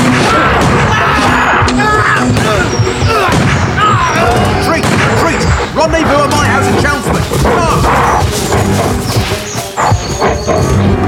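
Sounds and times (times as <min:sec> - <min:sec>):
gunfire: 0:00.0 - 0:01.7, 0:02.3 - 0:09.5
voices shouting: 0:00.0 - 0:11.0.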